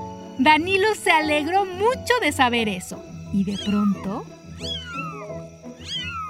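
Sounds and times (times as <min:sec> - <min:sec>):
speech: 0:00.4 - 0:05.0
newborn kittens mewing in thin high-pitched cries: 0:03.4 - 0:06.2.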